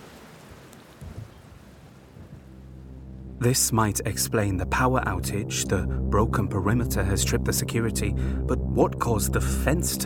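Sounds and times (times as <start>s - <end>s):
steady rain: 0.0s - 2.9s
thunder rumbling: 2.0s - 10.0s
speech: 3.4s - 10.0s.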